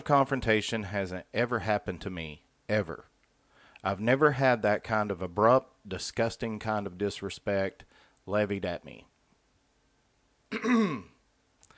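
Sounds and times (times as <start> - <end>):
speech: 0.0 - 3.1, 3.8 - 9.1, 10.5 - 11.1
throat clearing: 10.5 - 11.2.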